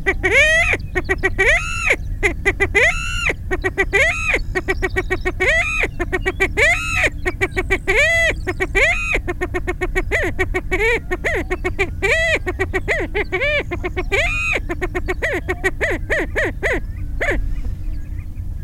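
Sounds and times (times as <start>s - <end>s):
greater prairie chicken cackling when flushed: 0.0s - 18.4s.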